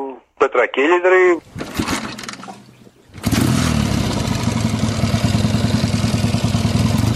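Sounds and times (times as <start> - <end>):
speech: 0.5 - 1.5
750cc motorcycle engine starting and idling: 1.4 - 7.1.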